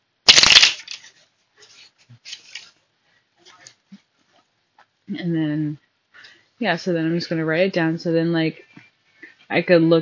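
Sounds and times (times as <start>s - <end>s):
deck of tarot cards being shuffled: 0.3s - 2.7s
speech: 5.1s - 5.8s, 6.6s - 8.6s, 9.5s - 10.0s.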